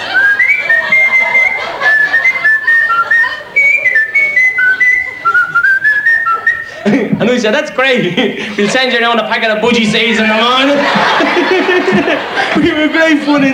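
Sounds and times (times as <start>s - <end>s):
woman whistling a tune into a telephone: 0.0s - 6.8s
laughter: 0.0s - 13.5s
speech: 7.2s - 13.5s.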